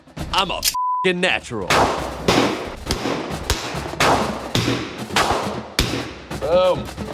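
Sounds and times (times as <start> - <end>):
speech: 0.4 - 2.4
handgun being fired at a basic firearms course: 1.7 - 6.1.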